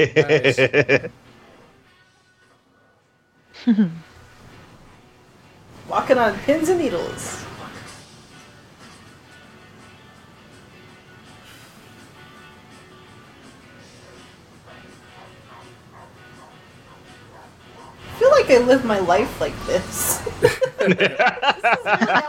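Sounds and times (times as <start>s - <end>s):
human voices: 0.0s - 1.1s, 20.8s - 22.2s
laughter: 0.0s - 1.2s, 20.2s - 22.2s
speech: 0.0s - 1.2s, 3.6s - 4.1s, 5.9s - 7.5s, 18.5s - 22.2s
litter of puppies yipping, barking and whimpering: 15.1s - 18.1s.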